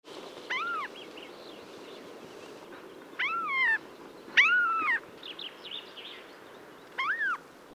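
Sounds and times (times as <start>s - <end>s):
Siberian jay calling: 0.5s - 1.1s, 3.2s - 5.1s, 6.9s - 7.4s.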